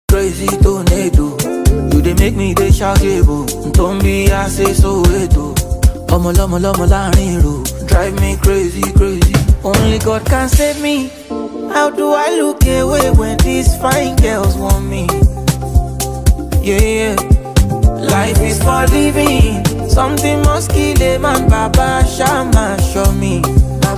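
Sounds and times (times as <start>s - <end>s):
instrumental beat with hook: 0.1s - 23.9s.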